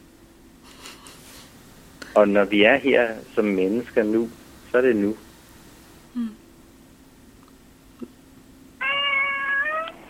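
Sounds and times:
speech: 0:02.2 - 0:05.2, 0:06.1 - 0:06.4
cat meowing: 0:08.8 - 0:10.0.

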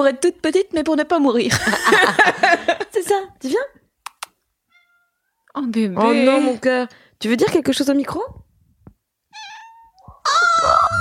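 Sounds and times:
speech: 0:00.0 - 0:03.8, 0:05.6 - 0:08.4
pet cat meowing: 0:04.7 - 0:05.3, 0:09.3 - 0:11.0.

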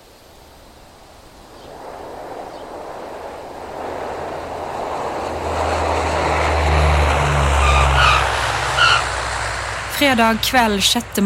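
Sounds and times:
Dash 7 propeller airliner engines droning on landing at Namsos Airport: 0:00.0 - 0:11.2
Dash 7 tire skid on touchdown: 0:01.7 - 0:10.0
speech: 0:10.0 - 0:11.2.

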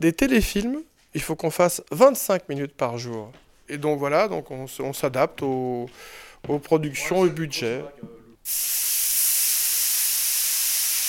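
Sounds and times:
speech: 0:00.0 - 0:09.1
steam hissing from a hot clothes iron pressed onto a wet cloth: 0:08.5 - 0:11.0.

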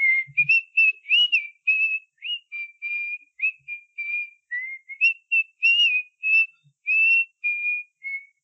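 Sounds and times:
person whistling a birdsong-like melody: 0:00.0 - 0:08.4.

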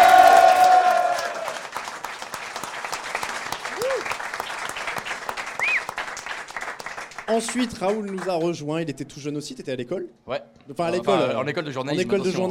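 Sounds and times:
people cheering: 0:00.0 - 0:01.8, 0:02.8 - 0:06.2
large crowd applause: 0:00.0 - 0:08.6
whistles: 0:05.6 - 0:06.0
speech: 0:07.4 - 0:12.4.

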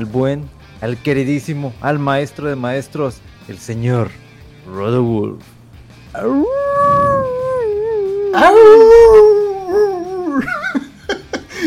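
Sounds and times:
speech: 0:00.0 - 0:07.0, 0:08.4 - 0:09.2
dog howling: 0:06.2 - 0:10.5
laughter: 0:10.2 - 0:11.6.

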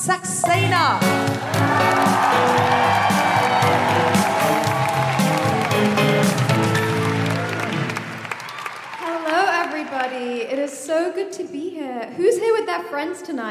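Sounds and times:
speech: 0:00.0 - 0:01.8, 0:10.7 - 0:13.4
loud dense crowd applauding and cheering with whoops and shouts: 0:00.6 - 0:10.6.

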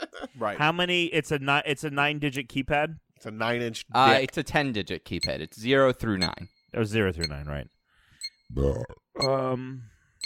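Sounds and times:
speech: 0:00.4 - 0:07.8, 0:08.5 - 0:09.9
deep croaky burps: 0:08.6 - 0:09.2.

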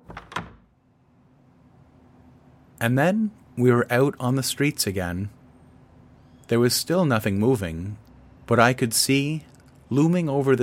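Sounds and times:
performers' door behind a stage opening and shutting: 0:00.0 - 0:00.8
speech: 0:02.8 - 0:05.4, 0:06.5 - 0:10.6.

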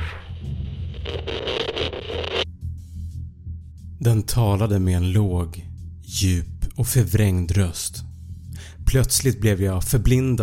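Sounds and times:
radio static crackling: 0:00.0 - 0:02.5
speech: 0:04.0 - 0:10.4.

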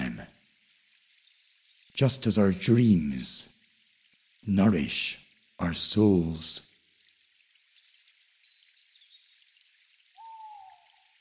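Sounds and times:
steady soft rainfall in a forest: 0:00.0 - 0:11.1
speech: 0:02.0 - 0:03.5, 0:04.4 - 0:06.7
owl hooting from high branches in a forest: 0:10.2 - 0:11.1.

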